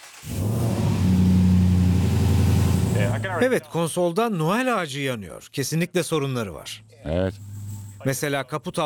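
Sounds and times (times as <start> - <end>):
six-wheeled 700 hp vehicle engine revving at half throttle: 0.2 - 3.4
speech: 3.2 - 8.8.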